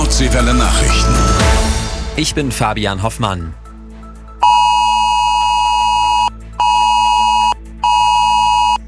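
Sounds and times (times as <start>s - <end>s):
speech: 0.1s - 1.5s, 2.2s - 3.6s
mobile phone emergency warning alert tone: 0.8s - 1.5s, 4.4s - 8.8s.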